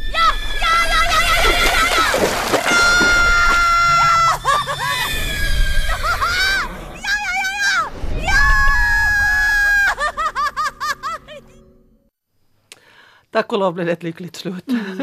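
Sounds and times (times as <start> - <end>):
bird screeching loudly and harshly while seizing a horse: 0.0 - 9.9
speech: 13.4 - 15.0.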